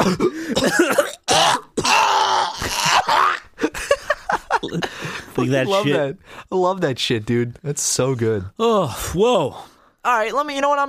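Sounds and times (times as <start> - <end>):
speech: 0.0 - 1.0, 5.4 - 10.8
person coughing: 0.0 - 2.0
person clearing throat: 0.0 - 3.3
groan-like sounds: 1.3 - 3.5
laughter: 2.6 - 6.1.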